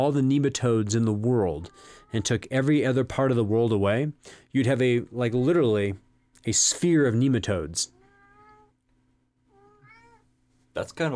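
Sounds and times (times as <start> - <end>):
speech: 0.0 - 8.0, 10.8 - 11.1
female pet cat meowing: 7.9 - 8.8, 9.5 - 10.3.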